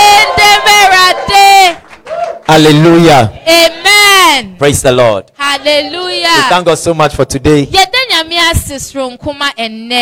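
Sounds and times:
church audience shouting in praise: 0.0 - 4.0
speech: 2.5 - 10.0.

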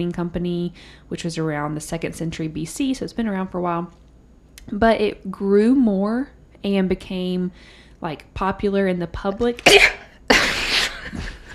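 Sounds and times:
speech: 0.0 - 4.0, 4.7 - 10.0
person sneezing: 9.6 - 11.0.

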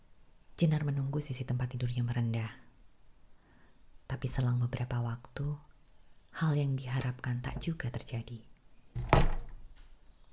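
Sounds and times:
speech: 0.6 - 2.7, 4.1 - 5.7, 6.3 - 9.4
soft thump: 9.0 - 9.7
door creaking open: 9.0 - 9.8.

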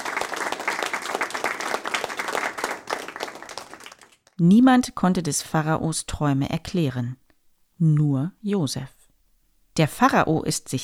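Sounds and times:
crowd of courtiers applauding: 0.0 - 4.4
speech: 4.4 - 7.2, 7.8 - 9.0, 9.8 - 10.8.

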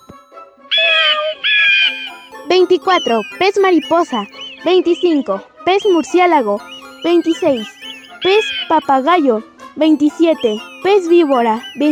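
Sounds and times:
bird mewing call: 0.7 - 2.2, 2.8 - 4.8, 5.9 - 8.8
speech: 2.6 - 11.9.

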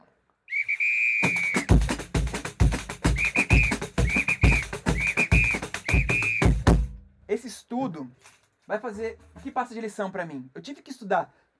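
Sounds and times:
samba whistle blowing: 0.5 - 1.9, 3.0 - 6.7
loud busy drum hits: 1.7 - 7.1
speech: 7.8 - 11.4.

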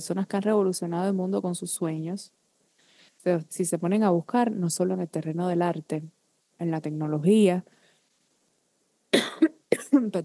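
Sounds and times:
speech: 0.0 - 2.4, 3.2 - 7.8, 10.0 - 10.2
person coughing while recovering from flu: 9.2 - 10.0.

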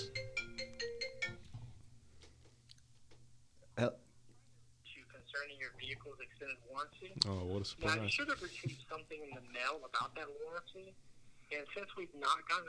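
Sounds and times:
phone ringtone for an incoming call playing a bright melodic chime: 0.0 - 1.5
speech: 3.8 - 4.0, 5.6 - 12.6.

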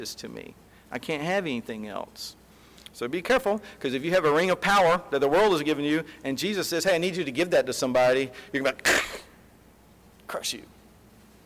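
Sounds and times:
speech: 0.0 - 9.2, 10.3 - 10.8
person sneezing sharply and forcefully: 8.8 - 9.4.

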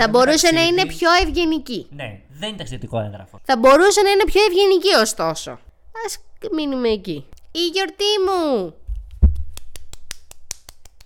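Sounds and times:
speech: 0.0 - 8.8
single person clapping hands: 9.3 - 11.0.

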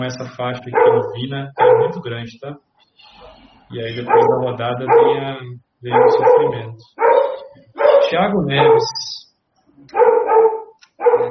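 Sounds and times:
speech: 0.0 - 7.0, 8.1 - 9.2
dog barking loudly with long drawn-out barks: 0.6 - 2.1, 3.9 - 9.2, 9.9 - 11.2.

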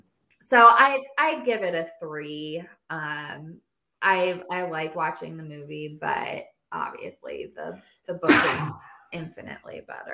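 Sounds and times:
speech: 0.5 - 10.1
sneeze: 8.2 - 8.8.

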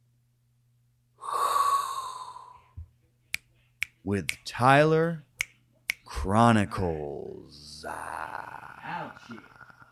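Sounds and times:
deep inhaled breath with a faint whistling tone: 1.2 - 2.7
speech: 4.1 - 5.3, 6.2 - 9.6.

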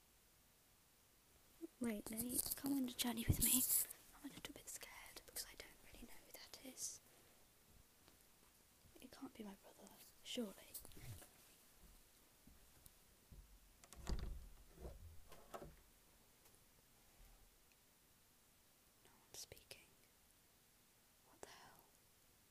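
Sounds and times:
faint whispering: 1.6 - 7.1, 8.9 - 11.6, 19.0 - 20.1, 21.2 - 22.0
speech: 1.8 - 4.9, 10.3 - 10.6
door being quietly opened: 13.8 - 15.8.

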